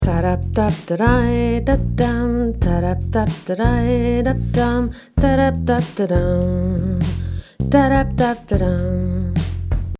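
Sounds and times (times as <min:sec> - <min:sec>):
final voice: 0:00.0 - 0:09.6.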